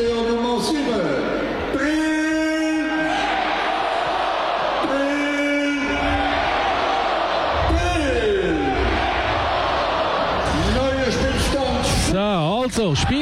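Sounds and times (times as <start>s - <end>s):
stadium announcer calling out the score at a football match: 0.0s - 3.4s, 4.8s - 6.9s, 7.5s - 9.2s, 10.4s - 13.2s
football crowd roaring back in unison in a reverberant stadium: 3.0s - 4.9s, 5.8s - 10.8s
speech: 12.8s - 13.2s.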